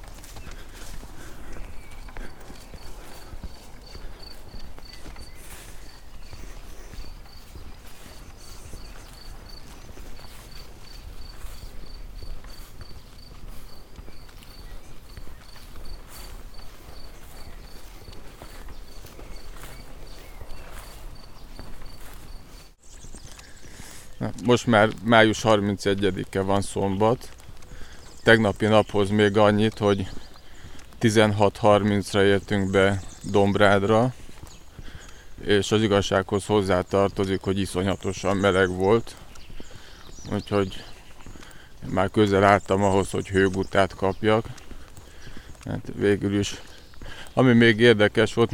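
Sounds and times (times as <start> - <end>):
crickets chirping in a high-pitched pulsing trill: 0.0 - 22.8
rhythmic footsteps or hoof-like clopping during a long walk: 0.0 - 48.5
speech: 24.3 - 27.4, 28.2 - 30.2, 31.0 - 34.2, 35.4 - 39.2, 40.3 - 40.9, 41.9 - 44.5, 45.7 - 46.7, 47.4 - 48.5.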